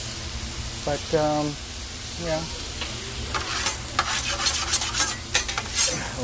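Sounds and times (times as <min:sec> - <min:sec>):
burger patties frying on a deli grill: 0:00.0 - 0:06.2
speech: 0:00.8 - 0:02.6.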